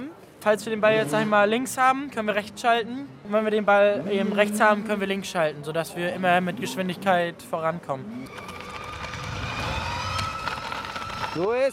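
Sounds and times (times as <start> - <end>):
speech: 0.4 - 8.6, 11.4 - 11.7
children's electric motorcycles whining during motorball training in Kuppenheim: 8.2 - 11.7.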